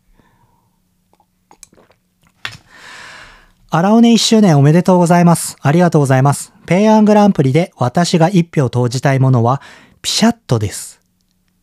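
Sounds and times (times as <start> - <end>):
person sipping and swallowing water: 1.1 - 2.5
speech: 3.7 - 11.0.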